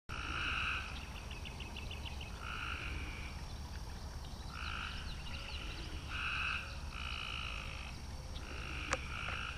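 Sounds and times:
Cope's gray treefrog giving short harsh buzzy trills: 0:00.1 - 0:01.0, 0:02.3 - 0:03.4, 0:04.5 - 0:09.5
steady background hiss: 0:00.1 - 0:09.5.

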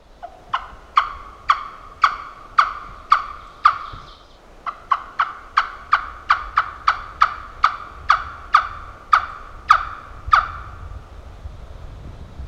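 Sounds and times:
turkey gobbling call in the woods: 0:00.2 - 0:10.8.

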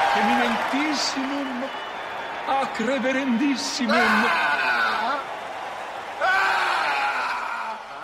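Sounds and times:
speech: 0:00.2 - 0:01.9, 0:02.4 - 0:04.8
man screaming in anguish: 0:03.9 - 0:05.2, 0:06.2 - 0:08.0.

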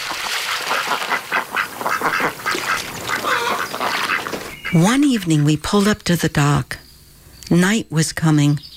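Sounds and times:
ducks landing on river water: 0:00.0 - 0:04.6
ducks quacking: 0:00.0 - 0:05.3
speech: 0:04.7 - 0:06.8, 0:07.5 - 0:08.7.

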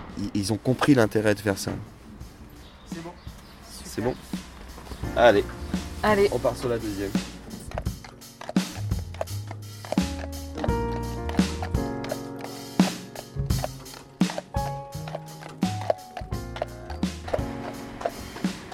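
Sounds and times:
speech: 0:00.2 - 0:02.0, 0:04.0 - 0:04.4, 0:05.0 - 0:07.3
horse-drawn cart wheels and fittings creaking and rattling: 0:06.0 - 0:18.7
horse hooves clopping while pulling a cart: 0:06.1 - 0:18.7.

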